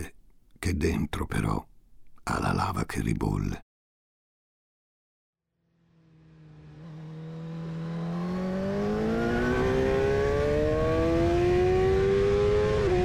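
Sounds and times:
speech: 0:00.0 - 0:01.7, 0:02.3 - 0:03.6
car engine accelerating hard on an open straight asphalt road: 0:05.7 - 0:13.0.

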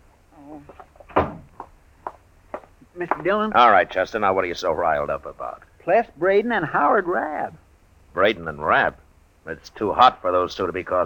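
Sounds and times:
speech: 0:00.5 - 0:00.8, 0:03.0 - 0:07.6, 0:08.2 - 0:11.0
door shutting with a solid thump: 0:01.1 - 0:01.5.

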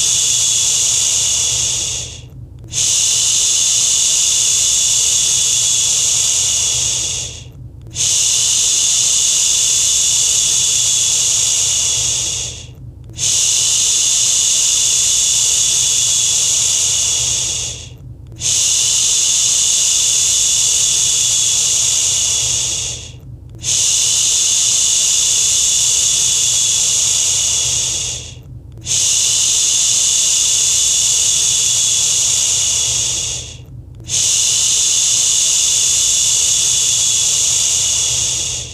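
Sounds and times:
steady bright shushing sound: 0:00.0 - 0:38.7
faint low rumble: 0:00.6 - 0:03.6, 0:04.3 - 0:08.7, 0:11.4 - 0:13.9, 0:17.0 - 0:19.2, 0:21.9 - 0:24.4, 0:32.5 - 0:38.7.

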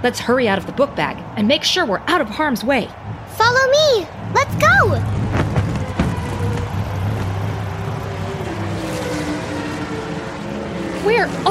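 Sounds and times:
speech: 0:00.0 - 0:05.2, 0:11.0 - 0:11.4
race cars whizzing past on a track: 0:05.0 - 0:11.4.

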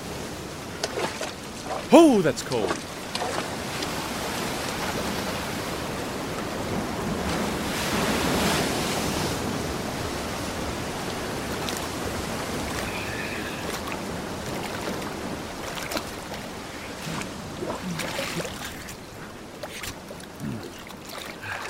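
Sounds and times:
ocean waves breaking on shore: 0:00.0 - 0:21.6
speech: 0:01.7 - 0:03.0.

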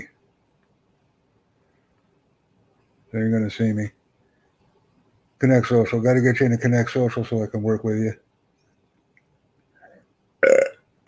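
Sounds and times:
speech: 0:03.1 - 0:04.0, 0:05.4 - 0:08.2
person burping after dinner: 0:10.4 - 0:11.0.

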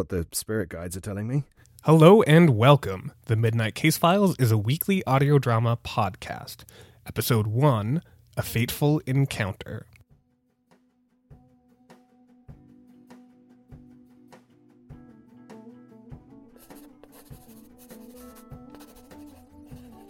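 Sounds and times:
speech: 0:00.0 - 0:09.9
pencil scratching across a newspaper crossword: 0:16.6 - 0:20.0.

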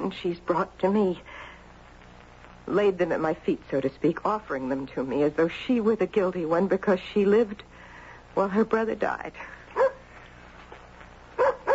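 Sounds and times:
speech: 0:00.1 - 0:01.5, 0:02.6 - 0:07.8, 0:08.4 - 0:09.6
dog barking at the door: 0:09.8 - 0:10.0, 0:11.4 - 0:11.7.

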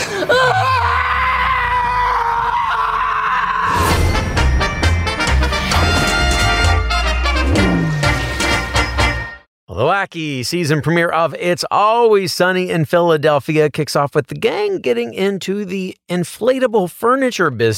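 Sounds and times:
person screaming: 0:00.0 - 0:03.9
upbeat music with a heavy bass beat: 0:03.9 - 0:09.3
speech: 0:10.1 - 0:17.7.

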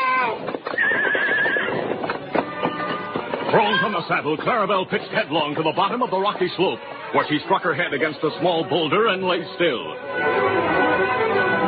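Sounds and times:
black horse whinnying: 0:00.0 - 0:02.0
horse hooves clattering and scraping on a steep rocky slope: 0:00.2 - 0:05.2
speech: 0:03.5 - 0:10.6.

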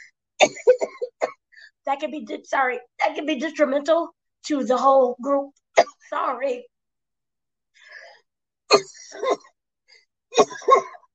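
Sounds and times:
harsh coughs: 0:00.4 - 0:01.5, 0:08.7 - 0:09.5, 0:10.3 - 0:11.1
speech: 0:01.9 - 0:06.7
faint breathy sound: 0:07.7 - 0:10.2.

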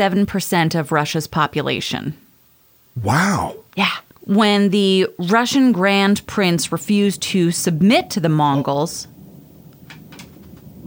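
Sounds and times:
speech: 0:00.0 - 0:02.2, 0:03.0 - 0:09.1
brief hissing crackles: 0:02.3 - 0:10.8
thunder rumbling during a thunderstorm over a lake: 0:04.9 - 0:10.8.

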